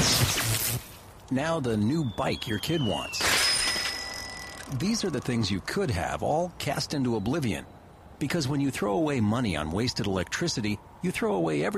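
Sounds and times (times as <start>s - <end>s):
shattering glass and debris from a flat screen television: 0.0s - 0.9s, 3.1s - 4.6s
flat screen television smashing after being thrown: 0.0s - 1.0s, 2.6s - 4.8s
speech: 0.6s - 3.4s, 4.7s - 11.7s.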